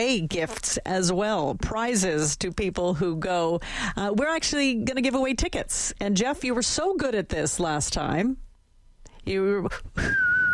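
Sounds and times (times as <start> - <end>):
speech: 0.0 - 8.4, 9.2 - 10.4
person whistling a sustained high note: 10.0 - 10.5.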